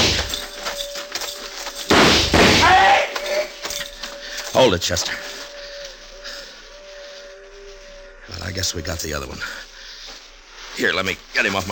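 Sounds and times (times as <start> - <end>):
gunfire during a frontier shootout: 1.9 - 2.7
speech: 4.6 - 5.4, 8.4 - 9.7, 10.8 - 11.7.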